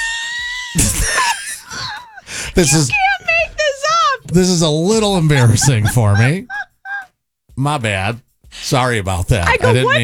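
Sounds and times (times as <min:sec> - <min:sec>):
person screaming in pain from a paper cut: 0:00.0 - 0:04.3, 0:05.3 - 0:07.1
laughter: 0:00.0 - 0:07.2, 0:09.5 - 0:10.0
speech: 0:00.7 - 0:01.3, 0:02.6 - 0:03.0, 0:04.3 - 0:06.6, 0:07.6 - 0:10.0.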